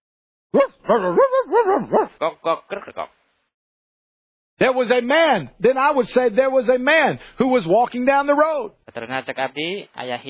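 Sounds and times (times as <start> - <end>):
speech: 0.5 - 3.2, 4.6 - 10.2
person voicing a dog puppet imitating dog barking and yelping: 0.6 - 3.0.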